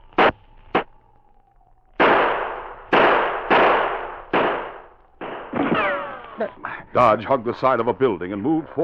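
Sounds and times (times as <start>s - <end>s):
handgun gunshots in an alley: 2.0s - 5.9s
speech: 6.4s - 8.8s.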